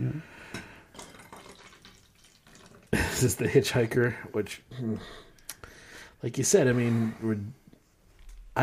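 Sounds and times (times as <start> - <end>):
spoiled beer being poured out: 0.9 - 3.2
speech: 3.2 - 5.3, 6.2 - 7.6.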